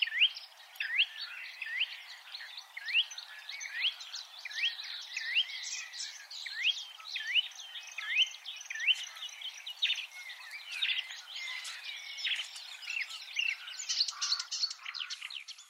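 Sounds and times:
marsh warbler song with whistled slurs, chatters and buzzy phrases: 0:00.0 - 0:15.6.

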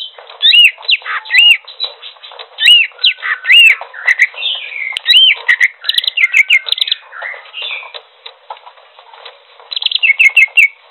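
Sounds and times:
Greater green leafbird song of looping arched whistles: 0:00.0 - 0:08.0, 0:09.7 - 0:10.8.

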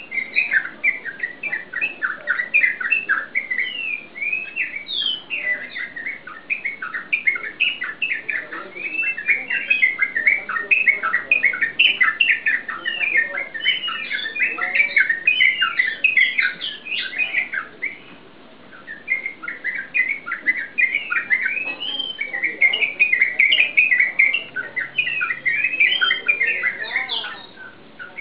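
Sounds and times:
yellow-vented bulbul chattering song: 0:00.0 - 0:28.1.

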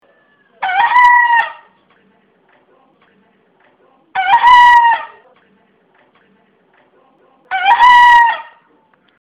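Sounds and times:
bekisar junglefowl hybrid crowing: 0:00.0 - 0:01.8, 0:04.2 - 0:05.2, 0:07.5 - 0:08.6.

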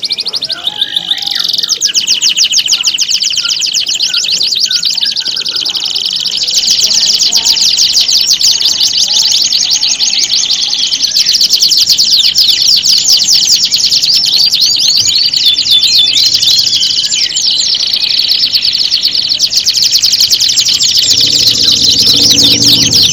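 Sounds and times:
domestic canary singing with trills, buzzy rolls and sweeping chirps: 0:00.0 - 0:23.1.

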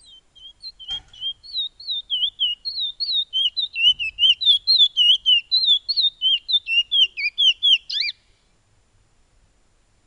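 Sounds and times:
piolet bird singing quick repeated wavering whistles: 0:00.0 - 0:08.3.

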